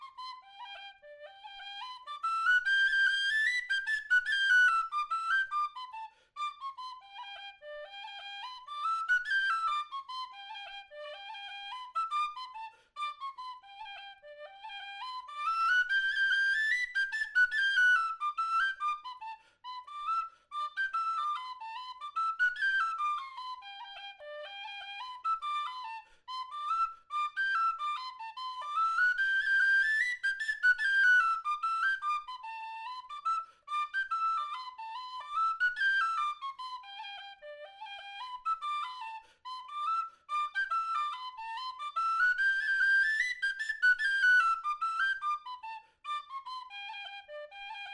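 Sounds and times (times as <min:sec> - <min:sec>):
whistle playing a reel: 0:01.5 - 0:47.9.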